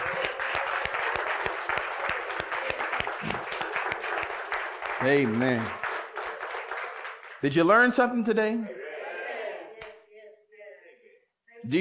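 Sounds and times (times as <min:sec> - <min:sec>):
audience applauding at the end of a sermon: 0:00.0 - 0:07.8
speech: 0:05.0 - 0:05.8, 0:07.4 - 0:08.8.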